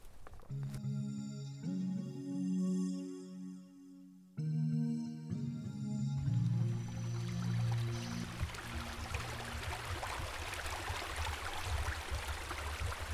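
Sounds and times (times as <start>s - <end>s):
brief musical jingle: 0.6s - 9.2s
water babbling over a beaver dam on a stream: 7.0s - 13.1s.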